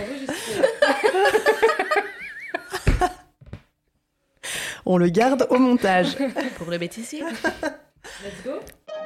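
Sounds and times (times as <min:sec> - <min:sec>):
people laughing and giggling: 0:00.0 - 0:03.2, 0:05.8 - 0:08.0
speech: 0:04.9 - 0:08.8.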